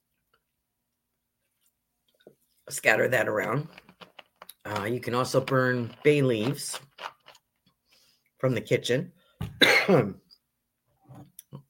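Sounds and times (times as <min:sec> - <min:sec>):
speech: 0:02.3 - 0:03.8, 0:04.7 - 0:07.1, 0:08.4 - 0:10.2
person coughing: 0:09.5 - 0:10.2
person clearing throat: 0:09.5 - 0:10.3.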